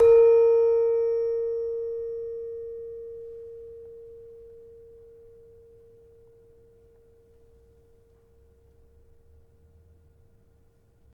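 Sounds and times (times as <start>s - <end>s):
gravity harps tuned to A sharp 4: 0.0s - 7.3s.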